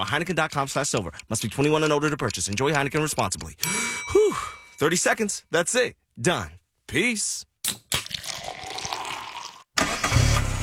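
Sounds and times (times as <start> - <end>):
speech: 0.0 - 7.5
car engine cranking and starting: 9.8 - 10.6.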